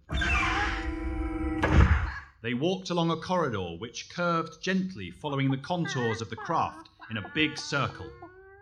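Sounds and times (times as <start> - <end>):
metal door grinding shut with a drawn-out ringing creak: 0.0 - 2.2
speech: 2.4 - 8.4
laughter: 4.8 - 8.6.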